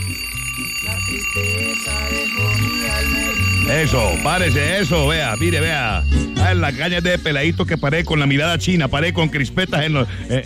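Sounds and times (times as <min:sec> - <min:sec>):
alarm clock ringing: 0:00.0 - 0:07.5
speech: 0:00.9 - 0:10.4.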